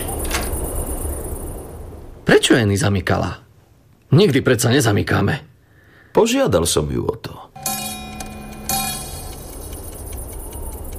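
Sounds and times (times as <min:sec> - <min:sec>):
quiet hiss: 0:00.0 - 0:10.9
speech: 0:02.3 - 0:03.4, 0:04.1 - 0:05.5, 0:06.1 - 0:07.7
clock striking two at night: 0:07.6 - 0:10.9.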